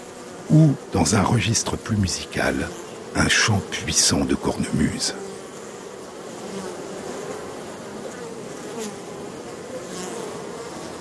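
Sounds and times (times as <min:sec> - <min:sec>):
honeybee swarm vibrating and buzzing loudly: 0:00.0 - 0:11.0
speech: 0:00.5 - 0:05.3.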